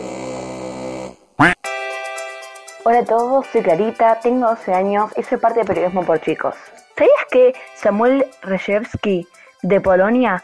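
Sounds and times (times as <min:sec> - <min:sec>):
duck quacking at a pond: 0:01.4 - 0:01.6
speech: 0:02.8 - 0:10.4.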